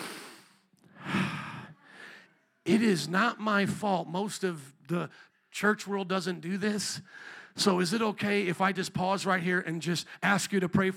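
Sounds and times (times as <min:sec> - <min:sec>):
church congregation taking a deep breath together: 0:00.0 - 0:02.4, 0:07.0 - 0:07.6
speech: 0:02.6 - 0:10.9.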